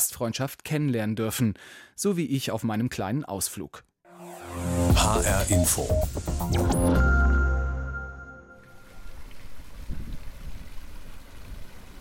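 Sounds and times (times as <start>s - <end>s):
speech: 0.1s - 7.2s
short musical sting: 4.1s - 8.8s
fountain water splashing in a town square: 8.6s - 11.9s.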